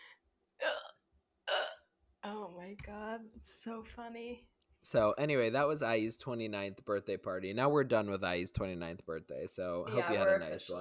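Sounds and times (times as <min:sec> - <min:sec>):
sharp breathy hiccups: 0:00.6 - 0:01.9
speech: 0:02.3 - 0:10.7.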